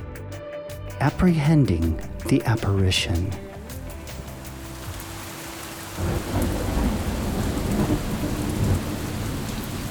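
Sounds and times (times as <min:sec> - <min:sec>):
speech: 0:01.0 - 0:03.4
steady dense rain pouring down: 0:03.6 - 0:09.8
deep continuous rumble of thunder: 0:06.0 - 0:09.8.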